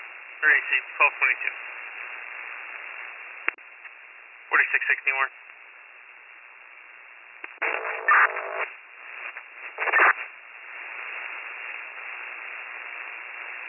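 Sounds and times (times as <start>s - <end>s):
speech: 0.4s - 1.7s, 4.6s - 5.4s
tinny radio static with crackling bursts and hiss: 0.4s - 3.6s, 4.5s - 5.3s, 7.4s - 13.6s.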